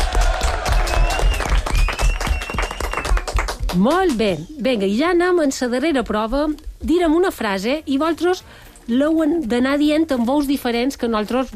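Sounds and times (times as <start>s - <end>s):
crowd clapping: 0.0s - 4.3s
faint whistle or cheer: 0.6s - 3.3s
speech: 3.8s - 11.5s.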